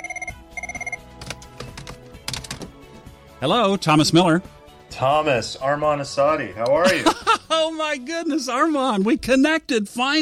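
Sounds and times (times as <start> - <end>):
telephone ringing with a bright electronic bell: 0.0 - 1.0
speech: 3.4 - 10.2
laughter: 6.8 - 7.8.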